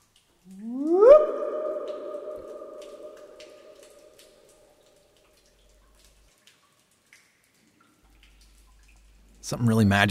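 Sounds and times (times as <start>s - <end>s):
low resonant tone reverberating inside a large cave dome: 0.5s - 4.8s
speech: 9.5s - 10.0s.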